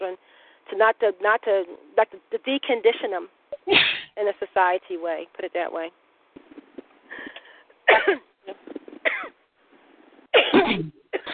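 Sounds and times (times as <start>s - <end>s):
breathy inhales between sneezes: 0.2s - 0.7s, 7.1s - 7.8s
speech: 0.8s - 6.0s, 8.0s - 8.2s
person in a sneezing fit: 3.6s - 4.2s, 10.4s - 11.3s.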